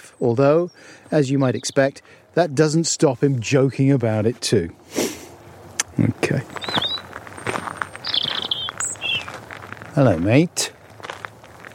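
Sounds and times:
speech: 0.2s - 5.1s, 6.0s - 6.5s, 10.0s - 10.8s
small bird chirping and trilling in a tree: 6.5s - 9.4s.

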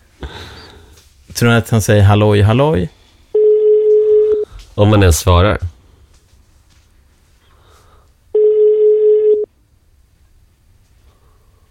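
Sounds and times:
speech: 1.4s - 3.0s, 4.8s - 5.7s
telephone ringback tone: 3.4s - 4.4s, 8.4s - 9.5s.

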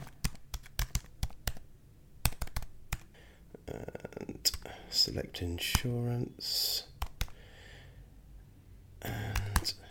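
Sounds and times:
typing a credit card number on a computer keyboard: 0.0s - 3.1s, 7.0s - 7.4s, 9.2s - 9.8s
speech: 5.0s - 6.9s.

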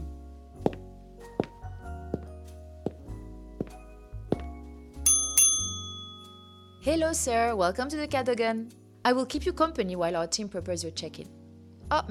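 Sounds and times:
hotel reception desk bell ringing: 5.0s - 6.8s
speech: 6.8s - 12.1s.

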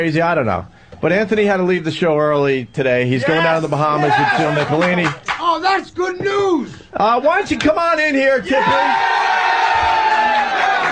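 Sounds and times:
speech: 0.0s - 9.4s
crowd cheering and whooping: 3.9s - 4.8s, 8.5s - 10.9s.

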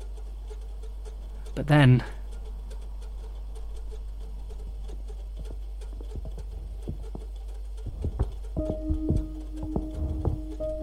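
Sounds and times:
low steady hum: 0.0s - 10.8s
speech: 1.6s - 2.2s
heavy footsteps stomping across a floor: 5.9s - 10.8s
faint tonal ringing: 7.8s - 10.8s.

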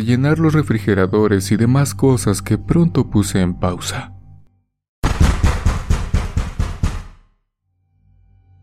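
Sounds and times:
speech: 0.0s - 4.2s
knocking on a glass door: 5.0s - 7.2s.

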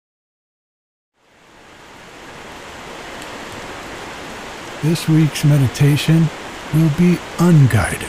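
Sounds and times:
rain pattering on a back porch: 1.2s - 8.0s
rushing creek water in winter: 1.2s - 8.0s
speech: 4.8s - 8.0s.

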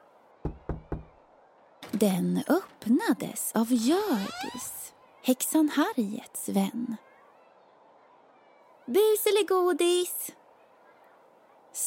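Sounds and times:
knocking on a small wooden door: 0.4s - 1.2s
speech: 2.0s - 7.1s, 8.9s - 10.4s.

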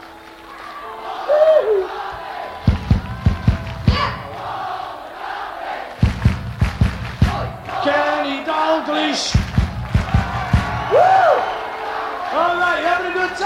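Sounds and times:
rhythmic group clapping: 0.0s - 12.6s
large concert crowd chanting back in unison: 0.9s - 6.3s, 7.2s - 12.4s.

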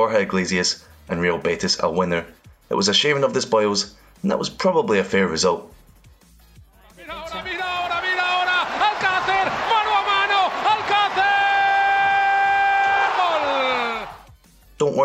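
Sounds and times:
speech: 0.0s - 5.8s
football stadium crowd cheering a goal in a Spanish league match: 7.0s - 14.3s
man's long drawn-out shout: 7.6s - 14.2s.

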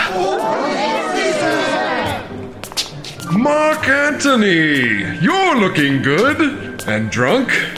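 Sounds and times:
crowd of citizens chattering outside: 0.0s - 2.6s
speech: 3.3s - 7.7s.

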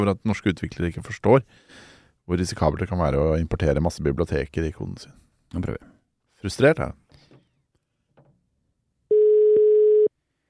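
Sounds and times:
speech: 0.0s - 7.0s
telephone busy signal: 9.1s - 10.1s.

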